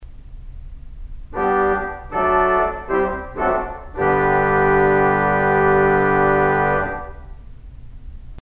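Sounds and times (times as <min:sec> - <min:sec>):
theatre organ: 0:01.3 - 0:07.4
tuba: 0:01.3 - 0:07.4.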